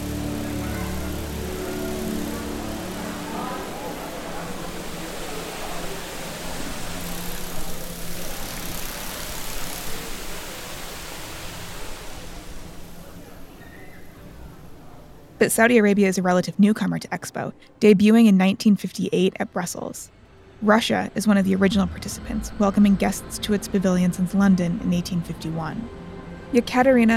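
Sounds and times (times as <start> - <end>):
water cascading down a wall-of-water feature: 0.0 - 13.6
low mechanical hum: 0.0 - 16.1, 20.0 - 27.1
speech: 15.4 - 27.1.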